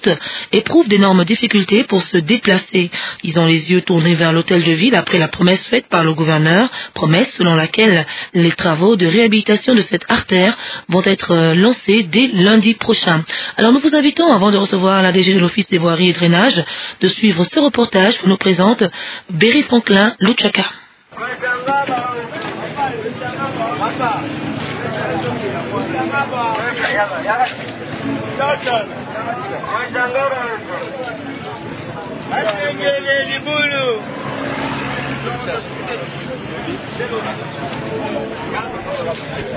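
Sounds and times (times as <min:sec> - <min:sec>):
speech: 0:00.0 - 0:31.2, 0:32.3 - 0:34.6, 0:35.2 - 0:39.5
street traffic rumbling at a city square: 0:00.0 - 0:39.5
crowd chatter in a busy outdoor city square: 0:21.1 - 0:39.5.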